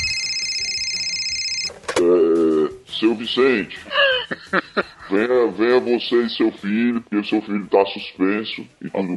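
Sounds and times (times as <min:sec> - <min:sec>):
home telephone ringing with high-pitched electronic tone: 0:00.0 - 0:01.8
speech: 0:03.0 - 0:09.1
laughter: 0:03.8 - 0:05.7.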